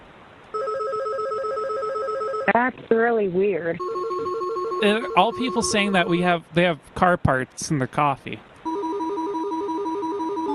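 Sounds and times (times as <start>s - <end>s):
about ten telephones ringing at once with electronic rings: 0.6s - 2.6s, 3.8s - 6.4s, 8.7s - 10.5s
speech: 2.5s - 4.0s, 4.8s - 8.5s.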